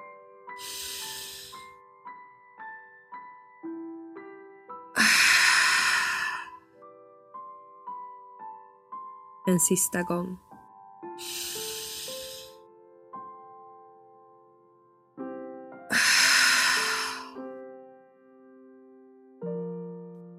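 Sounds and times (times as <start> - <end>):
deep guided breathing in through the nose and out through the mouth: 0.5 - 1.8, 5.0 - 6.7, 11.1 - 12.7, 15.9 - 17.4
speech: 9.5 - 10.5.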